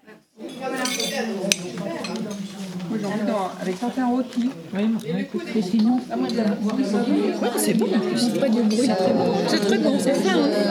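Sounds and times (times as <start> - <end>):
plates and cutlery clinking as diners take plates at a shared meal: 0.4 - 2.8
speech: 2.9 - 10.6.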